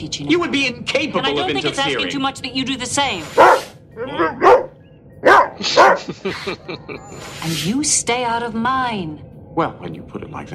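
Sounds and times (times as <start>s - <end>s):
speech: 0.0s - 4.4s, 5.6s - 10.5s
dog barking: 3.3s - 6.2s
laughter: 5.6s - 7.3s.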